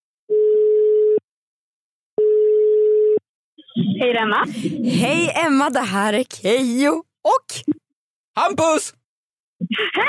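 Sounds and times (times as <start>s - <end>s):
telephone ringing tone on an outgoing call: 0.3s - 1.2s, 2.2s - 3.2s
speech: 3.8s - 7.8s, 8.4s - 9.0s, 9.7s - 10.0s.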